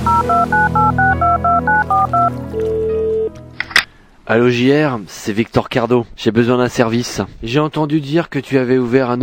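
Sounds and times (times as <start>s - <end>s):
touch-tone dialing of a telephone number: 0.1s - 3.3s
speech: 4.3s - 9.2s.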